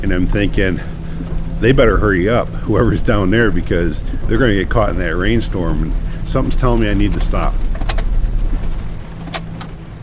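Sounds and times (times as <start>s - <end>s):
speech: 0.0s - 7.7s
car engine rumbling while pulling over onto the road shoulder: 0.0s - 10.0s
tires crunching and rattling on gravel: 0.0s - 10.0s.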